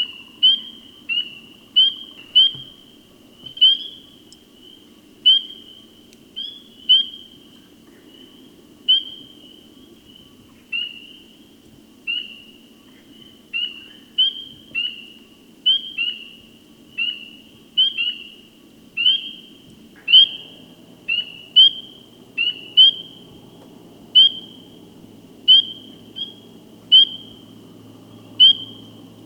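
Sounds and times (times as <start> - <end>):
spring peeper calling: 0.0 - 11.4, 12.1 - 29.2.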